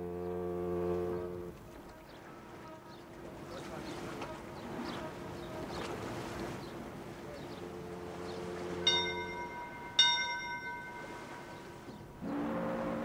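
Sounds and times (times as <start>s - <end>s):
deep steamship horn: 0.0s - 13.0s
steamship's second departure bell ringing: 8.6s - 12.3s.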